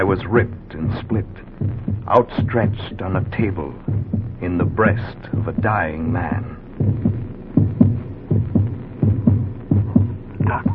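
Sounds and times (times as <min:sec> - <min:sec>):
speech: 0:00.0 - 0:07.1
loud heartbeat throbbing: 0:00.0 - 0:10.7
low hum: 0:00.0 - 0:10.7.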